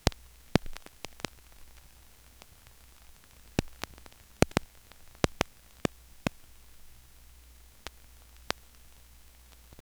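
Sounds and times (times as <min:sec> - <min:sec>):
low level broadband hiss: 0:00.0 - 0:09.9.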